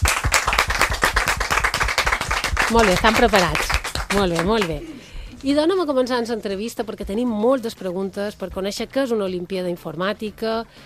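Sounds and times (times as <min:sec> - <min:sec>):
studio audience applause: 0:00.0 - 0:04.8
speech: 0:02.7 - 0:10.8.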